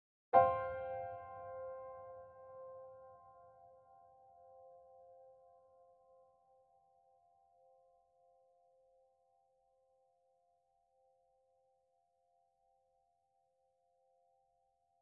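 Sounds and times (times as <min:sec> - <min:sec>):
piano chord in treble clef: 0:00.4 - 0:04.0.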